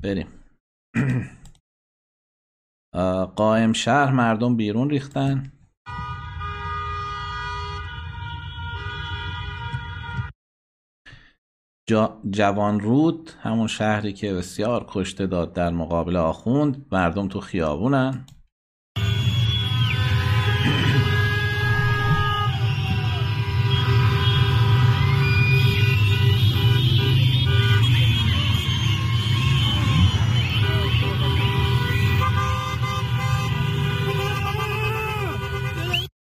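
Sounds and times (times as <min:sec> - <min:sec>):
speech: 0:00.0 - 0:00.4, 0:01.0 - 0:01.4, 0:03.0 - 0:06.1, 0:11.9 - 0:18.4
many car horns honking in a busy street celebration: 0:05.9 - 0:10.3, 0:19.0 - 0:36.1
low rumble of crowd and traffic noise: 0:19.0 - 0:36.1.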